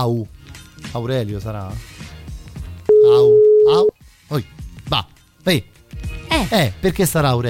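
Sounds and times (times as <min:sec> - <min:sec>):
speech: 0:00.0 - 0:02.1, 0:03.0 - 0:05.7, 0:06.3 - 0:07.4
phone call ringback tone ringing out unanswered: 0:02.9 - 0:03.9.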